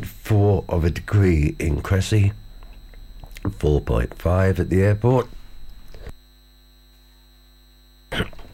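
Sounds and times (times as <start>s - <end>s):
steady low electrical hum: 0.0s - 8.5s
speech: 0.3s - 2.4s, 3.4s - 5.4s
person coughing: 8.1s - 8.5s.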